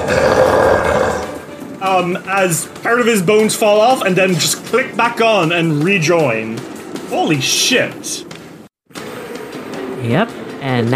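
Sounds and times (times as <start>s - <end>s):
human voice imitating a raspy undead monster roar: 0.0s - 1.5s
speech: 2.0s - 8.3s, 10.1s - 10.9s.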